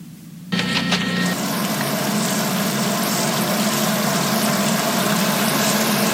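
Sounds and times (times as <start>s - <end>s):
lawn sprinkler pump humming: 0.5s - 6.1s
lawn sprinklers spraying water: 1.4s - 6.1s.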